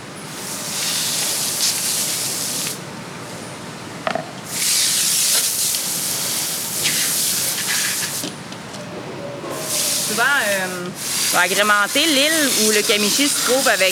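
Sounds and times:
garden hose spraying water cleaning out a pond basin: 0.3s - 2.8s, 4.5s - 8.3s, 9.7s - 13.9s
speech: 10.5s - 13.9s.

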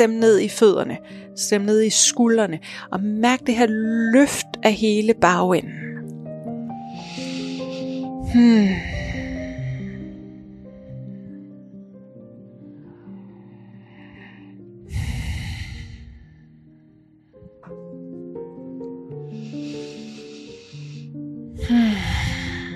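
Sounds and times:
speech: 0.0s - 5.9s, 8.3s - 9.1s
soft steady musical drone: 3.3s - 16.4s, 17.4s - 22.7s
deep slow breathing during yoga pose: 6.7s - 11.8s, 12.4s - 17.6s, 19.2s - 22.7s.

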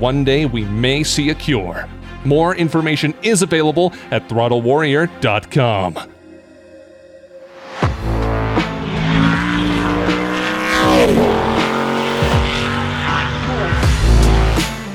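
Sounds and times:
speech: 0.0s - 6.2s
Pikes Peak Hill Climb race car engine revving through gear changes: 7.8s - 14.9s.

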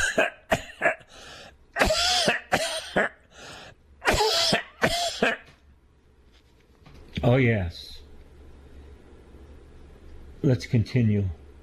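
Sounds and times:
person coughing harshly: 0.0s - 1.1s, 1.8s - 3.3s, 4.0s - 5.5s
speech: 10.4s - 11.4s.

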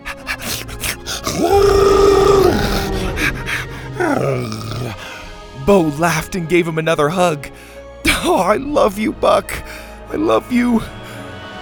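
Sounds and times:
dinosaur roaring: 0.0s - 5.2s
speech: 4.1s - 4.6s, 5.7s - 7.5s, 8.2s - 11.0s.

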